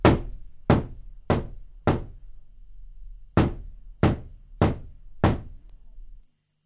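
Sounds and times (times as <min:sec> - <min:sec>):
firm knocks on a wooden door: 0:00.0 - 0:02.2, 0:03.4 - 0:05.6.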